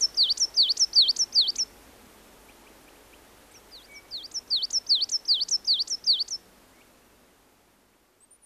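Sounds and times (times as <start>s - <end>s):
coal tit song: 0.0s - 1.7s, 3.5s - 6.4s.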